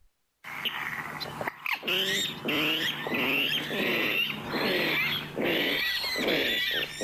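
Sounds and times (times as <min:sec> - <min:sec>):
steady hum: 0:00.0 - 0:07.0
rough grunting bird call: 0:00.5 - 0:07.0.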